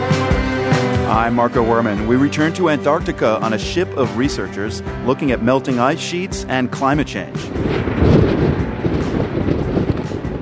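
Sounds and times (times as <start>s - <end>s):
speech: 1.1s - 8.6s
strong gusty wind buffeting the microphone outdoors on a pier: 6.9s - 10.4s.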